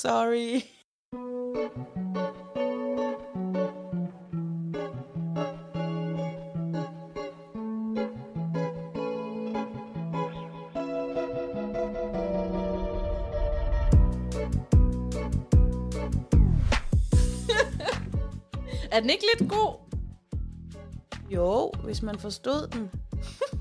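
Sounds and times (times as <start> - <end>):
speech: 0.0 - 2.3, 19.0 - 19.8, 21.4 - 23.4
music track played as a break: 1.2 - 20.0
laughter: 17.5 - 18.1.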